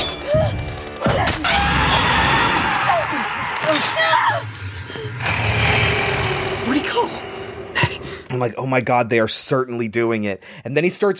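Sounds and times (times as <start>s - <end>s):
distorted monstrous scream of a man attacked with a hook: 1.4s - 8.3s
gasping: 4.4s - 8.3s
speech: 8.4s - 11.1s.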